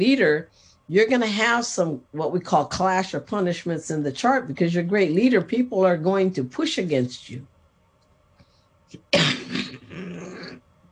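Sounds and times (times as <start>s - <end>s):
speech: 0.0s - 7.5s, 8.9s - 9.4s
person sneezing: 9.0s - 10.6s.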